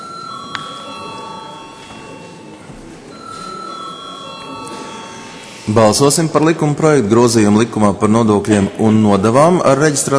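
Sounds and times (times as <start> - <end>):
electric bell ringing in a parliament chamber to call a vote: 0.0 - 5.8
speech: 5.7 - 10.1.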